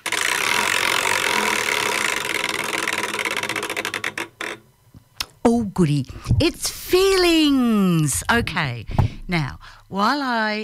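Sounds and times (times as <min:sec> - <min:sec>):
game-show prize wheel spinning and clicking: 0:00.0 - 0:04.6
speech: 0:05.8 - 0:10.6.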